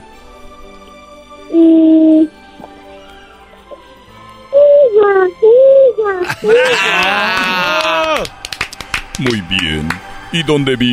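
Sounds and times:
speech: 1.5s - 1.8s, 9.2s - 10.9s
child imitating a horse whinny: 1.5s - 2.3s, 4.6s - 6.3s
laughter: 6.2s - 9.9s.

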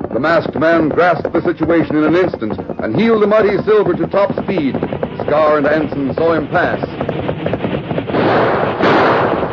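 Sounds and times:
speech: 0.2s - 7.0s
rapid volley of gunshots fired at a galloping rider: 4.8s - 9.5s.

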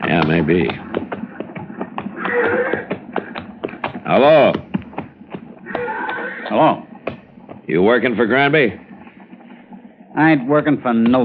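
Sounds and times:
horse hoofbeats: 0.0s - 11.2s
speech: 0.1s - 0.9s, 4.1s - 4.6s, 6.5s - 6.9s, 7.7s - 8.8s, 10.2s - 11.2s
horse whinnying: 2.2s - 2.9s, 5.6s - 6.6s.

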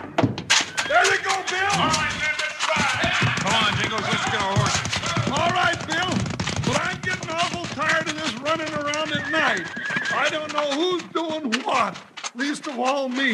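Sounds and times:
hooves clattering: 0.0s - 13.3s
horses galloping: 0.0s - 13.3s
excited voices shouting: 0.9s - 5.4s
speech: 1.4s - 2.4s, 3.5s - 13.3s.

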